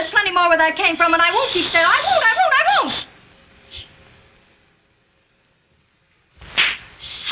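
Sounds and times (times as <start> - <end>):
speech: 0.4 - 3.0
sharp slaps across the face: 6.4 - 6.9.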